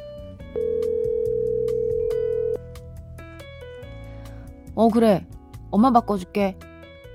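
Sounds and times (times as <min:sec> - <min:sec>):
faint music: 0:00.0 - 0:07.1
steady electronic ringback tone of an outgoing phone call: 0:00.5 - 0:02.6
speech: 0:04.8 - 0:06.6.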